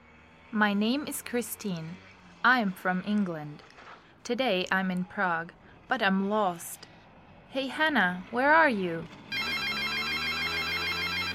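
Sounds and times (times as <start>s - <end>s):
speech: 0.5s - 6.9s, 7.5s - 9.2s
mobile phone ringtone: 9.3s - 11.3s.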